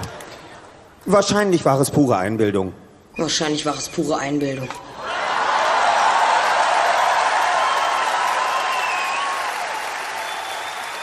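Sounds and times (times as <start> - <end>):
speech: 1.0 - 4.9
audience cheers and whoops: 5.0 - 11.0
large live audience applause: 5.0 - 11.0.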